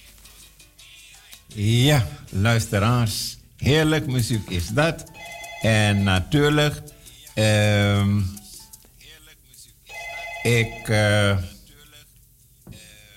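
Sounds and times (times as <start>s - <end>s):
speech: 1.6s - 8.4s, 10.4s - 11.5s
telephone ringing: 4.6s - 6.5s, 9.9s - 11.4s.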